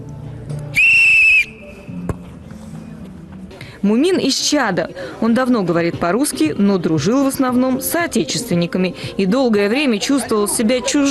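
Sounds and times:
low steady murmur: 0:00.0 - 0:11.0
referee's starting whistle blast at a youth football tournament in Moscow: 0:00.8 - 0:01.9
speech: 0:03.8 - 0:11.0.

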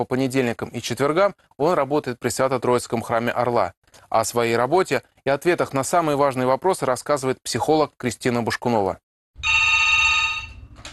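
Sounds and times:
speech: 0:00.0 - 0:09.7
help line telephone ringing: 0:09.4 - 0:10.8.

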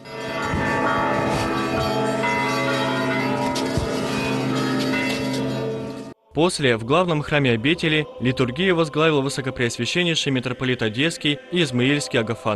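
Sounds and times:
monastery church bells ringing in a peal during an icon procession: 0:00.0 - 0:06.2
speech: 0:06.4 - 0:12.5.

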